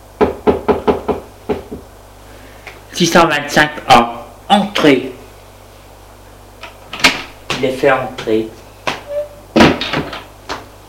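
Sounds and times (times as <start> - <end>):
guard knocking on a door: 0.2 - 1.9
speech: 3.0 - 5.1, 7.6 - 8.6.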